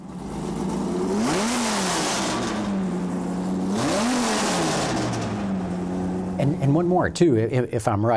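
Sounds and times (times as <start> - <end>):
V10 engine idling and revving in a drag-racing Challenger: 0.0 - 7.7
speech: 6.4 - 8.1.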